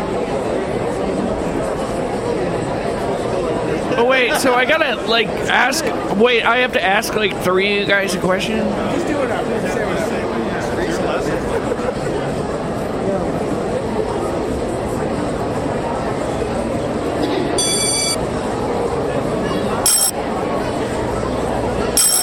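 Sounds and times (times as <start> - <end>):
loud crowd chatter: 0.0 - 22.2
laughter: 3.9 - 5.0, 11.2 - 12.5
speech: 4.2 - 9.8
theatre bell signalling the show is about to start: 17.6 - 18.2, 19.9 - 20.1, 22.0 - 22.2.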